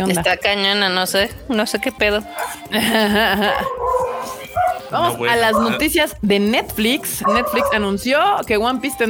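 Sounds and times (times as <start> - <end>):
speech: 0.0 - 3.8, 4.9 - 9.0
dog giving a drawn-out wavering bark: 2.4 - 2.6, 3.5 - 6.0, 7.2 - 8.0
laughter: 2.4 - 5.8.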